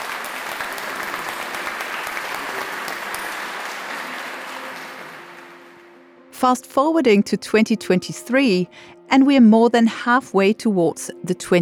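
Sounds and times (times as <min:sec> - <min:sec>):
large crowd applauding in a huge hall at a summit: 0:00.0 - 0:06.2
speech: 0:06.4 - 0:11.6.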